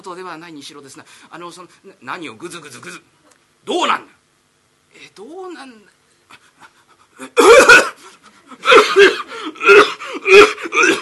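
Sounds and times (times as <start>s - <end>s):
speech: 0.0s - 4.2s, 4.9s - 7.8s, 8.5s - 11.0s
person fake coughing with exaggerated hoarse coughs: 7.2s - 8.0s, 8.6s - 11.0s.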